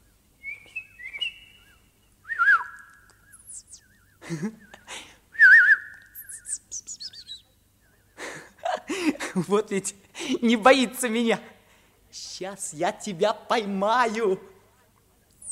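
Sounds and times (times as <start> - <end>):
golden crested bird whistling and chirping: 0.4 - 4.2, 5.4 - 8.2, 15.3 - 15.5
laughter: 4.2 - 5.2, 8.2 - 10.5
speech: 4.3 - 4.7, 9.4 - 11.5, 12.4 - 14.5.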